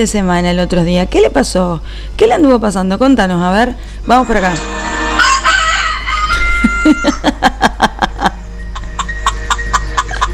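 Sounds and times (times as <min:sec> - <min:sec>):
speech: 0:00.0 - 0:05.0, 0:06.9 - 0:07.4
rooster clucking: 0:04.7 - 0:07.3, 0:08.7 - 0:10.3
rooster crowing: 0:04.7 - 0:07.4
laughter: 0:06.1 - 0:10.3.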